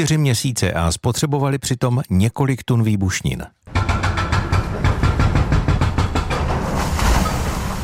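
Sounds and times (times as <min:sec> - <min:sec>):
speech: 0:00.0 - 0:03.7
excavator pounding through a tunnel wall: 0:03.7 - 0:06.8.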